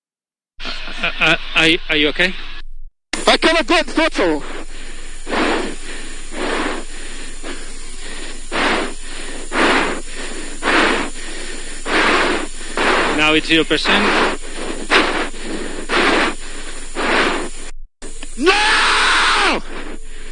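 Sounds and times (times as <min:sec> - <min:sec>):
laughter: 0:00.6 - 0:02.2
steady hiss of team radio static: 0:00.6 - 0:02.6, 0:03.2 - 0:20.3
speech: 0:01.0 - 0:02.5, 0:03.4 - 0:04.6, 0:13.3 - 0:14.4
racing driver screaming and groaning in anguish over crackly tinny team radio: 0:18.4 - 0:19.7.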